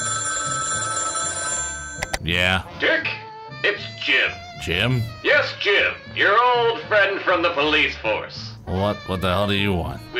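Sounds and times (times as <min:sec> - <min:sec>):
telephone ringing with an electronic bell tone: 0:00.0 - 0:02.3
speech: 0:02.2 - 0:10.1.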